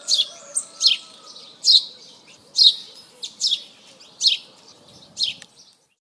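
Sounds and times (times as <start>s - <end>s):
house sparrow Passer domesticus giving loud harsh chirps: 0.0s - 5.9s.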